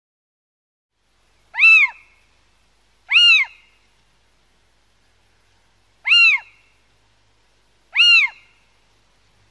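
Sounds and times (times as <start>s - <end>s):
little owl giving loud harmonic mewing calls: 1.5s - 2.2s, 3.1s - 3.9s, 6.0s - 6.8s, 7.9s - 8.7s.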